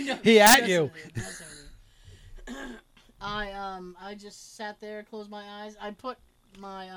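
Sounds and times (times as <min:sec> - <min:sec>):
speech: 0:00.0 - 0:01.5, 0:02.5 - 0:06.9
throat clearing: 0:02.4 - 0:02.8
short rough cough: 0:02.5 - 0:02.8.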